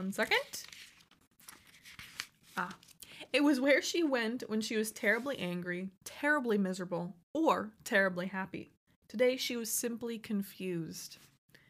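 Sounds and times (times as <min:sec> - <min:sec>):
speech: 0:00.0 - 0:00.8, 0:02.6 - 0:11.3
stuck paper being peeled apart: 0:00.2 - 0:03.0.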